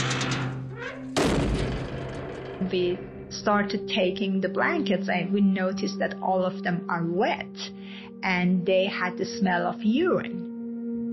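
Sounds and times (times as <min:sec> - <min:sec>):
heavy metal prison cell door slammed shut by female guard: 0:00.0 - 0:04.3
low steady hum of ambience: 0:00.1 - 0:05.9
speech: 0:02.7 - 0:10.5.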